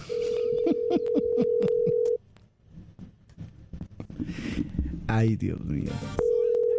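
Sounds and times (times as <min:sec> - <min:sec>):
steady telephone tone during dialing: 0:00.0 - 0:02.2, 0:06.2 - 0:06.7
quiet uneven noise: 0:00.0 - 0:06.7
speech: 0:05.1 - 0:06.2.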